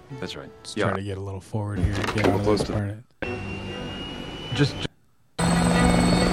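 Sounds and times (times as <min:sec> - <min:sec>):
speech: 0:00.1 - 0:03.5, 0:04.6 - 0:04.9
helicopter engine roar and whine: 0:05.4 - 0:06.3.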